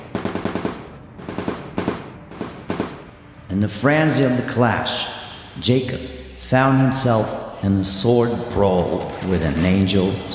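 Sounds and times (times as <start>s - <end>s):
semi-automatic pistol gunfire in a battle scene: 0.0s - 3.3s
speech: 3.6s - 10.3s.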